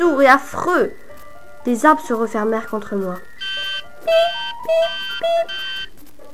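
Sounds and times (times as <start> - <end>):
speech: 0.0 - 1.0, 1.6 - 3.3, 4.0 - 5.6
electronic alarm clock ringing with harsh buzzy tone: 2.2 - 5.9.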